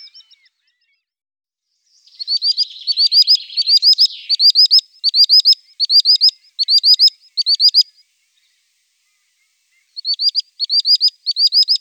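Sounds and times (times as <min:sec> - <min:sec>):
sandpiper calling: 0:02.1 - 0:08.1, 0:09.0 - 0:11.7.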